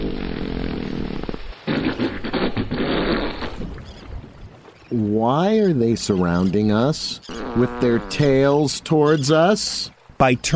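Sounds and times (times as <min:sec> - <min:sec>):
long loud fart sounds: 0:00.0 - 0:03.7, 0:07.3 - 0:08.5
speech: 0:04.9 - 0:10.5.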